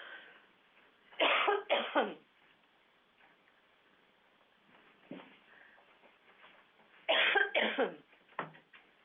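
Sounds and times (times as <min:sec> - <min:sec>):
person with something caught in the throat coughing: 0:01.2 - 0:02.3, 0:07.1 - 0:08.1.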